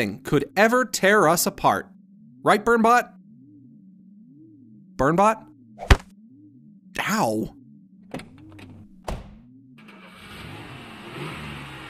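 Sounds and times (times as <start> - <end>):
speech: 0.0 - 3.2, 5.0 - 6.0, 7.0 - 8.3
car engine cranking, starting and running with a brief rev: 9.8 - 11.8.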